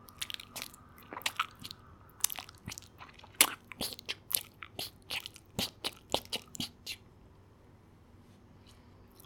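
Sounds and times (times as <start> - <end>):
person chewing leaves with exaggerated jaw movements: 0.0 - 7.0.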